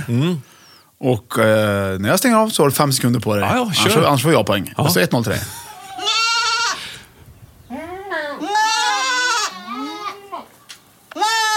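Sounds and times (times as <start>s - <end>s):
speech: 0.0s - 5.6s
goat bleating: 5.6s - 6.9s, 7.7s - 10.5s, 11.1s - 11.5s.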